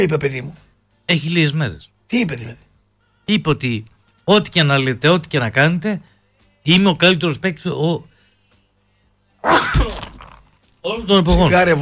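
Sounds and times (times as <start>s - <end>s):
speech: 0.0s - 2.6s, 3.3s - 8.1s, 9.4s - 10.0s, 10.8s - 11.8s
loud sneeze: 9.4s - 10.5s.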